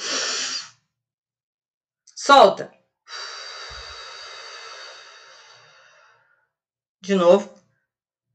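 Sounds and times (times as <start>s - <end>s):
deep airy inhalation during a breathing exercise: 0.0s - 0.8s, 3.1s - 6.4s
speech: 2.3s - 2.8s, 7.1s - 7.6s.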